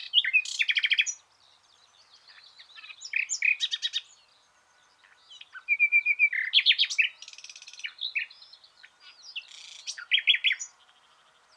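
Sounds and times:
common nightingale Luscinia megarhynchos singing: 0:00.0 - 0:11.5.

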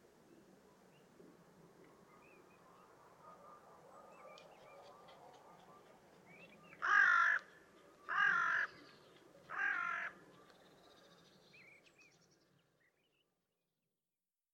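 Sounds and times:
carrion crow cawing, Corvus corone: 0:06.8 - 0:08.8, 0:09.5 - 0:10.2.

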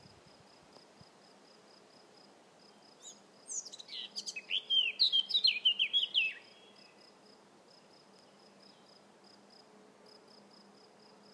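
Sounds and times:
Eurasian blackcap Sylvia atricapilla song: 0:03.0 - 0:06.4.

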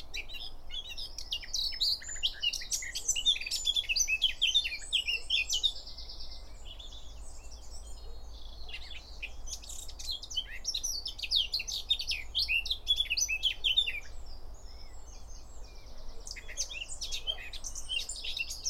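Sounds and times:
Eurasian blackcap Sylvia atricapilla warbling song: 0:00.0 - 0:18.6.

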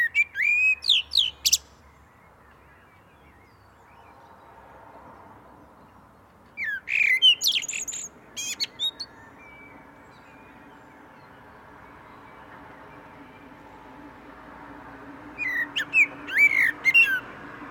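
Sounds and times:
common blackbird Turdus merula singing: 0:00.0 - 0:04.4, 0:05.8 - 0:13.6, 0:15.4 - 0:17.7.

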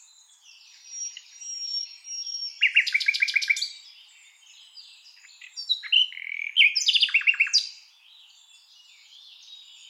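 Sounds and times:
Common nightingale Luscinia megarhynchos singing: 0:00.0 - 0:09.8.

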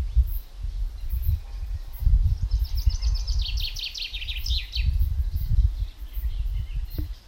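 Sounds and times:
common chaffinch Fringilla coelebs song phrase: 0:00.0 - 0:07.2.

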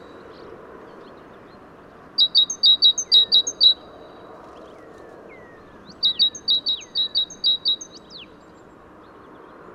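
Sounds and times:
steady low background noise: 0:00.0 - 0:09.7
great tit giving sharp high two-part notes, Parus major: 0:02.2 - 0:03.8, 0:05.5 - 0:08.3.

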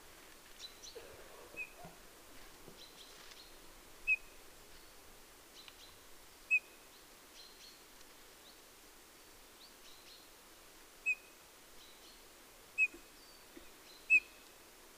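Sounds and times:
faint background hiss: 0:00.0 - 0:14.9
Eurasian bullfinch Pyrrhula pyrrhula whistled call notes: 0:01.6 - 0:01.8, 0:04.1 - 0:04.3, 0:14.1 - 0:14.4.

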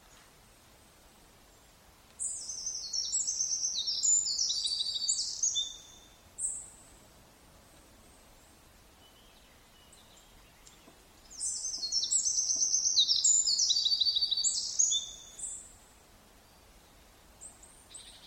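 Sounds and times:
Eurasian wren Troglodytes troglodytes singing trills and chattering notes: 0:02.2 - 0:06.7, 0:09.0 - 0:15.6.

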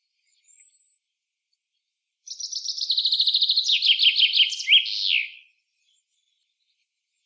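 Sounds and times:
Common chaffinch singing: 0:02.3 - 0:05.5.

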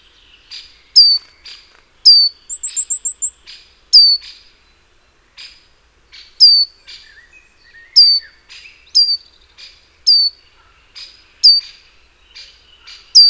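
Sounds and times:
soft bird chirps: 0:00.0 - 0:13.2
great tit Parus major calling with descending notes: 0:00.5 - 0:04.5, 0:06.1 - 0:07.2, 0:07.9 - 0:13.2.

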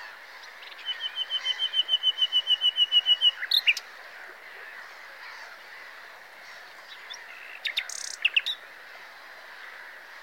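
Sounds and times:
common nightingale song, Luscinia megarhynchos: 0:00.0 - 0:04.8, 0:06.8 - 0:08.7.

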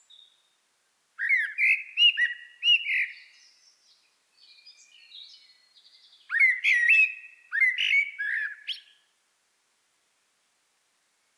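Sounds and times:
common blackbird Turdus merula song phrase: 0:00.0 - 0:00.6, 0:01.2 - 0:09.1.

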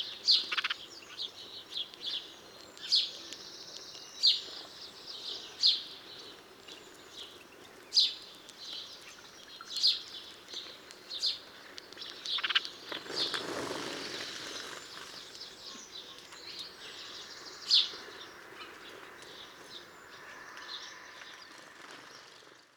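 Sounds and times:
house sparrow Passer domesticus chirping: 0:00.0 - 0:21.5.

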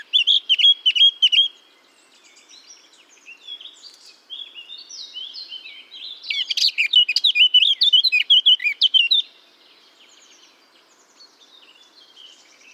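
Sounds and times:
Eurasian blackcap Sylvia atricapilla singing: 0:00.0 - 0:01.5, 0:06.2 - 0:09.3.

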